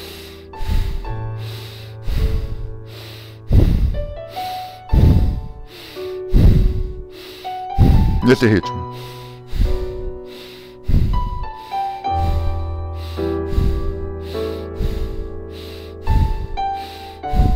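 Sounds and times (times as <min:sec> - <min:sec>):
deep rhythmic breathing, inhaling and exhaling: 0:00.0 - 0:17.5
speech: 0:08.3 - 0:09.2.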